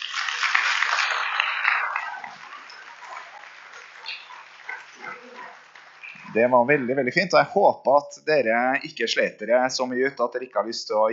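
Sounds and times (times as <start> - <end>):
audience applause: 0.0 - 7.1
speech: 6.3 - 11.1.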